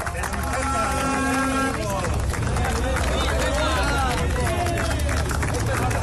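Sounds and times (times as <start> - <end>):
mingled voices and shouts: 0.0 - 6.0
picketers clapping ironically outdoors at factory gates: 0.0 - 6.0
vehicle engine droning: 0.0 - 6.0.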